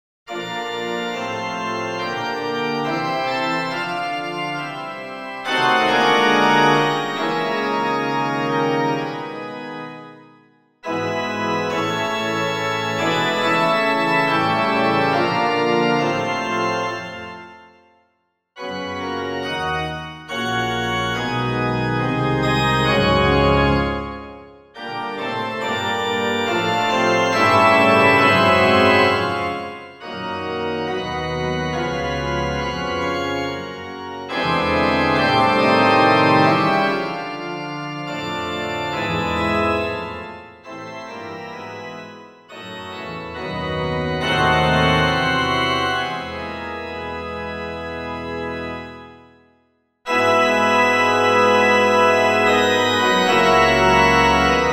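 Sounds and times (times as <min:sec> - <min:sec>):
organ recitative: 0:00.3 - 0:18.0, 0:18.6 - 0:54.7.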